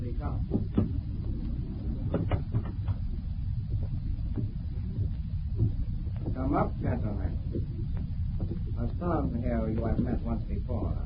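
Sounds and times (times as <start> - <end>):
steady low rumble: 0.0 - 11.0
door being pushed shut: 0.4 - 1.1, 2.0 - 3.1
speech: 9.0 - 11.0.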